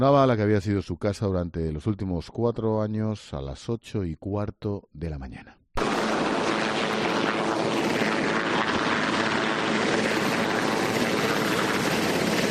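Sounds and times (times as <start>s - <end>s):
speech: 0.0s - 5.6s
Marine One helicopter flying: 5.8s - 12.4s.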